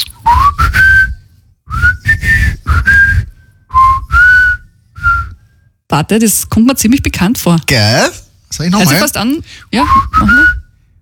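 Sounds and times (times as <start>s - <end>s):
man whistling a melody: 0.1s - 5.8s, 9.8s - 11.0s
speech: 5.9s - 10.6s.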